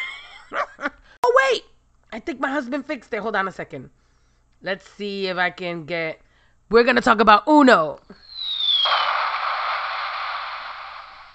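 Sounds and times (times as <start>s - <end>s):
speech: 2.2s - 4.0s, 4.6s - 9.0s
synthetic explosion effect from a battery-powered sound machine: 8.3s - 11.3s.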